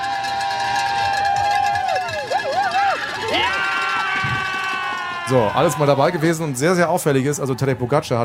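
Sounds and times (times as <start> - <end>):
cowbells clanging: 0.0 - 5.8
whoops from the roadside crowd: 0.0 - 5.8
roadside crowd cheering and shouting: 0.0 - 8.2
speech: 5.3 - 8.2.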